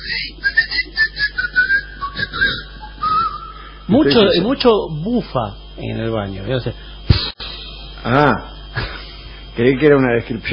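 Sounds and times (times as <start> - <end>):
person whistling a short melodic tune: 0.0 - 3.6
speech: 3.9 - 6.9, 8.0 - 8.9, 9.6 - 10.5.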